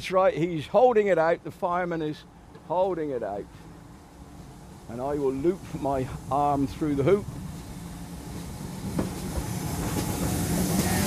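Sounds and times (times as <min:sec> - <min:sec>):
speech: 0:00.0 - 0:03.6, 0:04.9 - 0:07.4
train rolling past during token exchange: 0:00.0 - 0:11.0
light hiss from passing train: 0:02.2 - 0:11.0.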